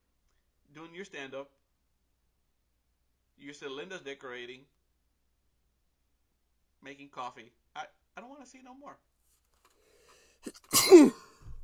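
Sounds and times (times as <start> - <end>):
speech: 0.8 - 1.6, 3.4 - 4.8, 6.8 - 9.1, 10.4 - 11.2
sneeze: 10.4 - 11.4.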